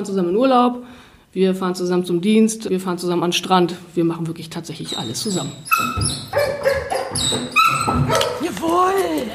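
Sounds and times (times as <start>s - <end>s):
speech: 0.0s - 9.3s
police dog barking: 5.8s - 8.4s.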